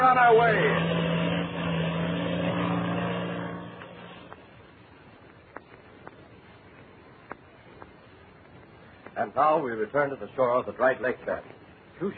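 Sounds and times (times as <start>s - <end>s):
black two-seater propeller airplane taking off from a dried lake bed: 0.0s - 9.2s
speech: 0.2s - 0.9s, 9.2s - 12.1s.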